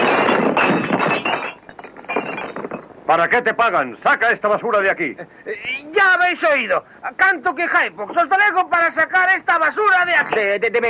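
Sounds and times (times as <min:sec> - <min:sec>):
gun smashed against drinking glasses in a western film scene: 0:00.0 - 0:02.9
drinking glasses breaking and clinking: 0:00.0 - 0:03.1
speech: 0:03.1 - 0:10.8.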